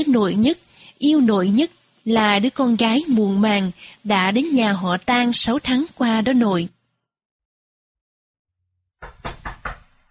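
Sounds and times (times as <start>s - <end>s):
speech: 0.0s - 6.8s
knocking on a door: 9.0s - 10.0s.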